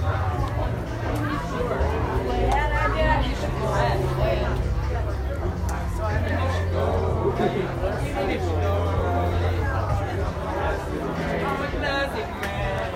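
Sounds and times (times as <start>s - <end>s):
crowded murmur of many voices at a silent disco: 0.0s - 12.9s
laughter: 6.1s - 12.2s.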